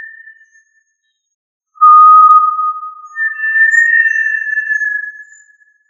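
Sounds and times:
Tinamidae tinamou calling with whistles: 1.8s - 5.5s.

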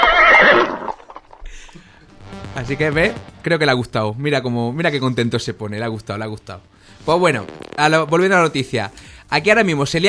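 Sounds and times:
horse neighing: 0.0s - 1.0s
speech: 2.6s - 10.0s.

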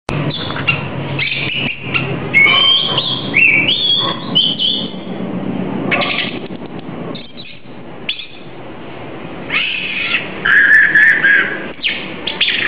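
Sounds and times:
low background hum: 0.1s - 12.6s
Oriental magpie-robin singing rich whistled notes: 0.2s - 5.1s, 5.9s - 6.4s, 7.1s - 8.5s, 9.5s - 12.6s.

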